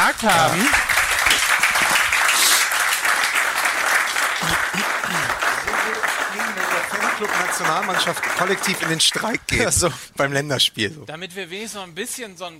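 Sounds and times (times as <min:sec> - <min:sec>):
studio audience applause: 0:00.0 - 0:09.8
speech: 0:00.1 - 0:00.9, 0:07.2 - 0:12.5
laughter: 0:04.4 - 0:10.0.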